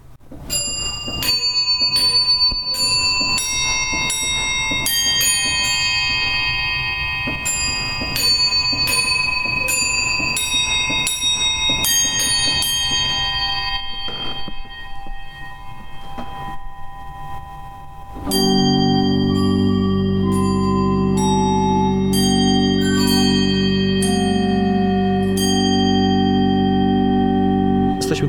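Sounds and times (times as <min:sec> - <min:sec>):
small organ stop bells struck by tiny hammers playing a tinkling melody: 0:00.4 - 0:28.2
deep full organ chords: 0:18.3 - 0:28.2.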